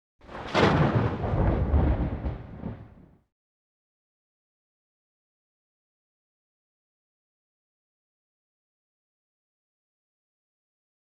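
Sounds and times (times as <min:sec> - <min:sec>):
single thunder clap: 0:00.2 - 0:03.2.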